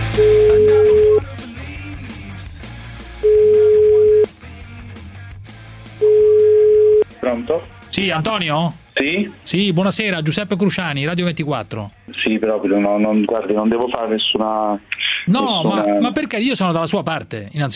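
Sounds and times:
ringback tones of an outgoing phone call to a municipal police officer: 0.1s - 1.2s, 3.2s - 4.3s, 6.0s - 7.1s
speech: 7.3s - 17.7s.

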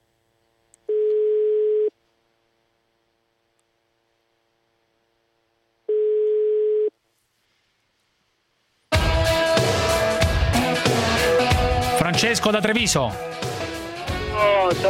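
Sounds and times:
telephone ringing on an incoming call line: 0.9s - 1.9s, 5.9s - 6.9s
music: 8.9s - 14.8s
speech: 12.2s - 13.5s.

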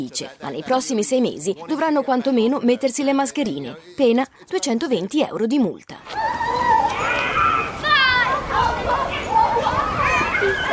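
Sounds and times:
speech: 0.0s - 6.2s
children shouting in an elementary school courtyard: 6.0s - 10.7s.

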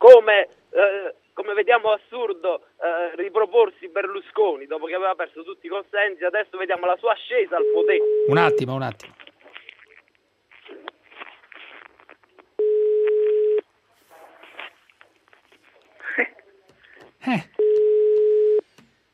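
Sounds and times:
speech: 0.0s - 9.2s, 17.2s - 17.6s
steady electronic telephone ringing: 7.6s - 8.8s, 12.6s - 13.6s, 17.6s - 18.6s.

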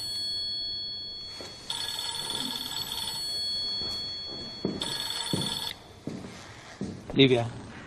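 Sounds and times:
telephone ringing: 0.0s - 6.0s
speech: 7.2s - 7.6s.

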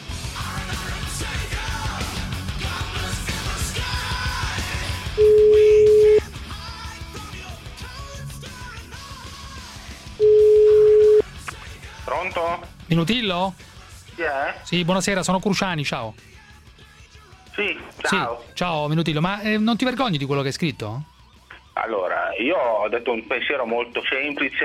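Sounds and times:
busy music: 0.0s - 24.6s
telephone ringing tone: 5.2s - 6.2s, 10.2s - 11.2s
speech: 12.9s - 16.4s, 17.6s - 21.1s, 21.8s - 24.6s.

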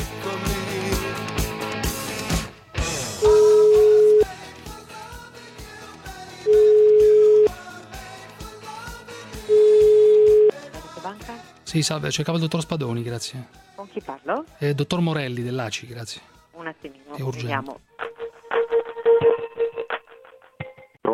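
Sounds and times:
busy music bed: 0.0s - 14.4s, 16.9s - 21.0s
phone line ringback tone while calling a bank: 3.2s - 4.3s, 6.5s - 7.5s, 9.5s - 10.5s
speech: 11.7s - 17.9s.

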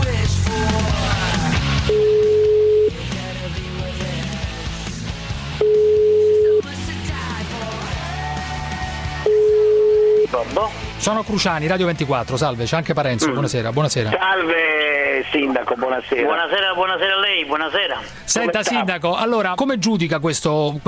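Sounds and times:
music: 0.0s - 20.8s
telephone ringback tones while an outgoing call is placed: 1.9s - 2.9s, 5.6s - 6.6s, 9.3s - 10.3s
speech: 11.0s - 20.8s.

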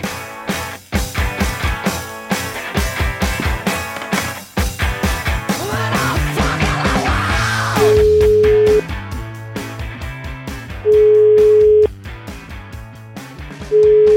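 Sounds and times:
loud rhythmic music with heavy drums: 0.0s - 14.1s
ringing tones of an outgoing telephone call: 7.8s - 8.8s, 10.9s - 11.9s, 13.8s - 14.1s.

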